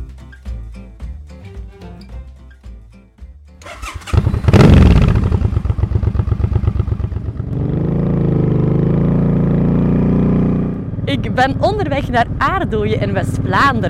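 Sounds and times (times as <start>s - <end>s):
motorcycle engine sputtering revving and roaring as bike rides off: 3.6s - 13.8s
speech: 11.1s - 13.8s.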